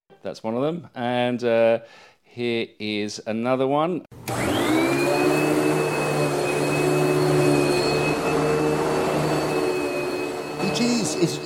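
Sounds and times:
speech: 0:00.3 - 0:04.2, 0:10.8 - 0:11.4
vacuum cleaner running: 0:04.2 - 0:11.4.

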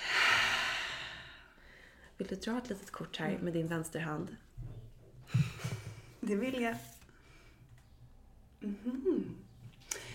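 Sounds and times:
person taking a deep breath with a deep breathy exhale: 0:00.0 - 0:02.0
speech: 0:02.2 - 0:04.7, 0:06.3 - 0:07.0, 0:08.6 - 0:09.4.

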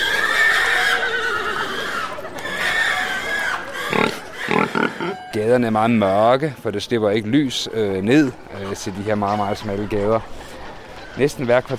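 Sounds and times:
horse neighing in long quavering whinnies in a street: 0:00.0 - 0:05.4
speech: 0:05.4 - 0:10.4, 0:11.2 - 0:11.7.

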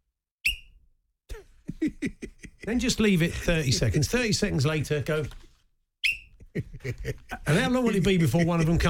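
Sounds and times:
short piercing whistle blast: 0:00.4 - 0:00.8, 0:06.0 - 0:06.3
laughter: 0:01.3 - 0:04.8, 0:06.4 - 0:08.8
speech: 0:01.8 - 0:05.4, 0:06.8 - 0:08.8.

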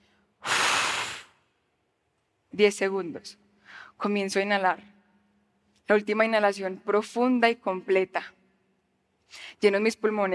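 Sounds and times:
full forceful exhalation before a breath-hold: 0:00.4 - 0:01.4
speech: 0:02.6 - 0:05.0, 0:05.9 - 0:08.4, 0:09.3 - 0:10.3.

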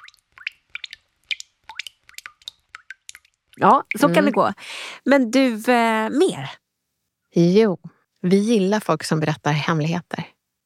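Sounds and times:
water drops plinking: 0:00.0 - 0:04.6
speech: 0:03.6 - 0:06.6, 0:07.4 - 0:10.3.

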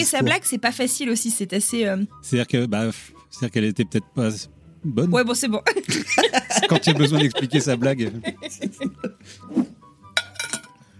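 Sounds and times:
speech: 0:00.0 - 0:09.7
faint laughter: 0:05.9 - 0:09.2
metal water bottle clinking: 0:10.2 - 0:10.8.

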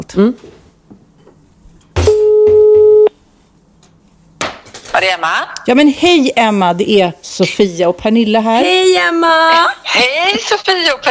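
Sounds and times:
speech: 0:00.1 - 0:00.6, 0:05.0 - 0:11.0
steady phone ringback tone: 0:02.1 - 0:03.1.

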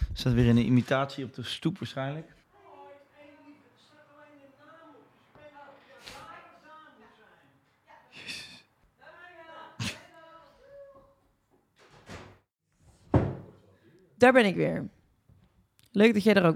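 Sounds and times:
speech: 0:00.2 - 0:02.4, 0:14.2 - 0:15.0, 0:15.9 - 0:16.5
front door opening with sharp clunks and thuds: 0:11.8 - 0:13.5.

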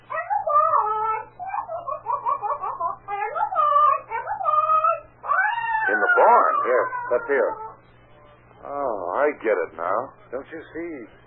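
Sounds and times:
parrot squawking and chattering in voice-like syllables: 0:00.0 - 0:07.8
faint low hum: 0:00.0 - 0:11.2
speech: 0:06.3 - 0:07.7, 0:08.7 - 0:11.2.

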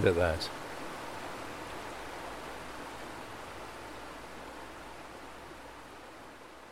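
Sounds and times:
speech: 0:00.0 - 0:00.6
flowing water: 0:00.0 - 0:06.7.

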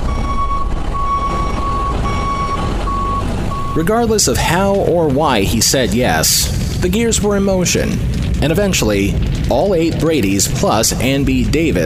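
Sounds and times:
armored truck reversal alarm beeping: 0:00.0 - 0:03.8
armored truck engine rumble: 0:00.0 - 0:11.8
speech: 0:03.8 - 0:11.8.

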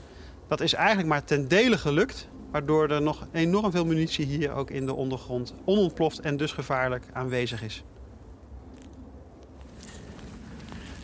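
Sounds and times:
low rumble of wind: 0:00.0 - 0:11.0
speech: 0:00.5 - 0:07.9
footsteps crunching through sand of a dune: 0:09.5 - 0:11.0.

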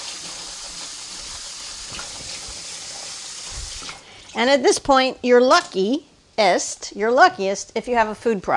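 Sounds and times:
running water from a tap rinsing canned beans in a strainer: 0:00.0 - 0:04.5
speech: 0:04.4 - 0:08.5.

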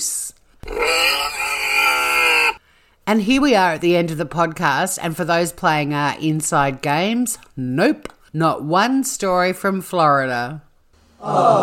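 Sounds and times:
pig grunting: 0:00.6 - 0:02.6
speech: 0:03.1 - 0:11.6.

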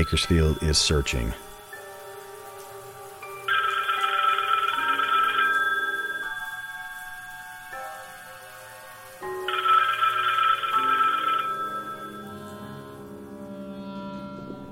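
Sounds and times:
speech: 0:00.0 - 0:01.4
telephone ringing with a bright rattling bell: 0:03.5 - 0:07.6, 0:09.4 - 0:12.6.

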